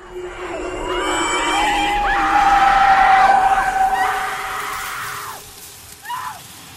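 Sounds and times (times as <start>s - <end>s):
low rumbling background: 0.0s - 5.6s
woman screaming: 1.7s - 5.4s, 6.0s - 6.4s.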